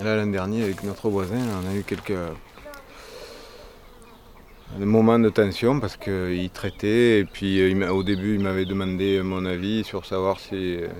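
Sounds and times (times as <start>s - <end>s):
speech: 0.0s - 2.6s, 4.7s - 10.9s
bees buzzing around: 0.0s - 6.4s
soft outdoor hiss: 0.0s - 10.9s.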